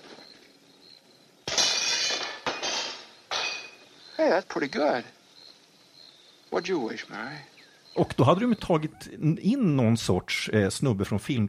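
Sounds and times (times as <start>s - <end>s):
window glass shattering from a thrown rock: 1.5s - 3.8s
speech: 4.2s - 5.2s, 6.5s - 11.4s.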